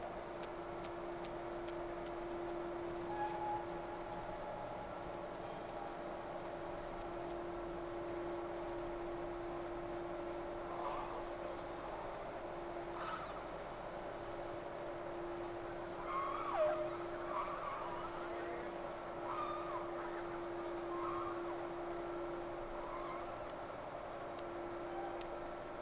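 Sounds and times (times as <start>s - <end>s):
steady low hum: 0.0s - 25.7s
faint tonal whale whistles sweeping up and down: 2.9s - 4.6s, 15.8s - 23.4s, 24.8s - 25.2s.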